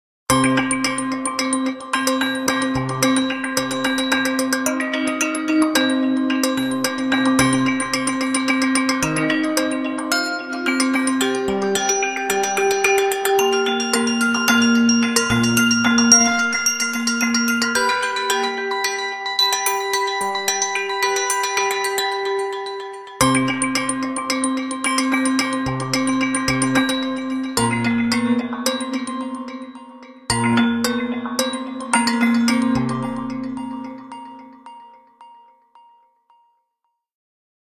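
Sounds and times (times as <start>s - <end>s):
3D wind bell ringtone on a mobile phone: 0.4s - 36.6s.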